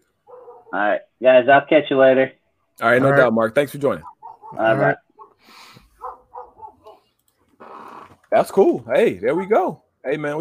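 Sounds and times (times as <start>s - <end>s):
next-door neighbors' dogs barking: 0.2s - 0.9s, 3.8s - 7.2s
speech: 0.7s - 5.7s, 8.3s - 10.3s.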